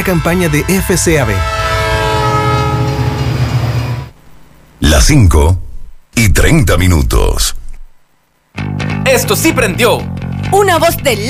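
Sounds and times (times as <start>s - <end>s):
speech: 0.0s - 1.6s, 5.0s - 5.6s, 6.2s - 7.6s, 8.6s - 11.2s
train horn blast: 0.0s - 4.2s.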